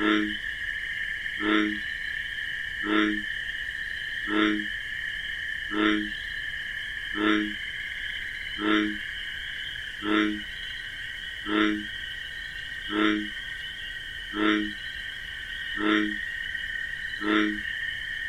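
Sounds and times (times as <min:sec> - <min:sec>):
American bullfrog croaking in wetlands at night: 0:00.0 - 0:17.9
crickets chirping in a nocturnal chorus: 0:00.0 - 0:18.2.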